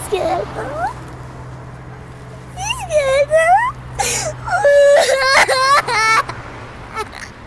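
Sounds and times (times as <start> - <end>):
frightened girl crying and whimpering: 2.6 - 6.3.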